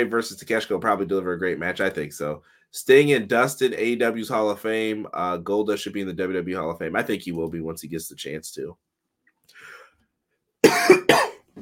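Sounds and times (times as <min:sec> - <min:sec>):
speech: 0:00.0 - 0:08.9
person coughing: 0:10.6 - 0:11.5.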